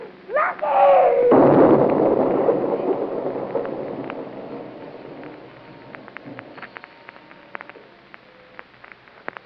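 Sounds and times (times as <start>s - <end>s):
scattered debris crackles and small pops: 0.0s - 9.4s
nitroglycerine truck explosion: 1.2s - 7.6s.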